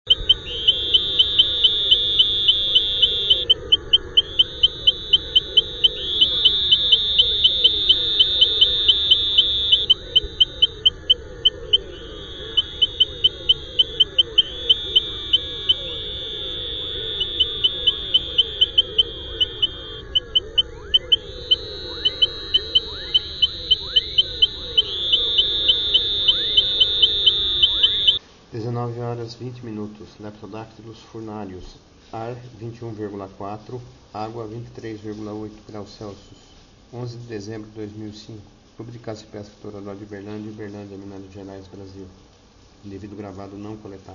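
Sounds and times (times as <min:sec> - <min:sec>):
Leptodactylus furnarius calling: 0:00.0 - 0:28.2.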